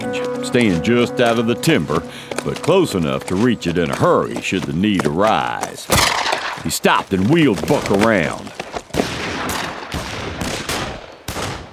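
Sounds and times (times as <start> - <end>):
speech: 0.1 - 8.6
pistol shots fired by half a dozen shooters a quarter mile away: 5.9 - 6.7, 8.9 - 11.7.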